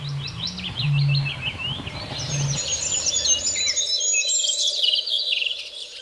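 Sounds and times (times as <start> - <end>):
low hum: 0.0 - 3.9
greenfinch singing with ringing trills and wheezy note: 0.0 - 5.1
other birdsong: 0.0 - 6.0.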